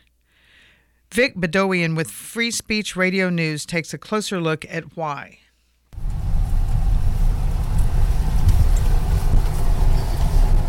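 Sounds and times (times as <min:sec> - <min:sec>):
speech: 0:01.2 - 0:05.4
pickup truck engine rumble and road noise heard from inside: 0:06.0 - 0:10.6.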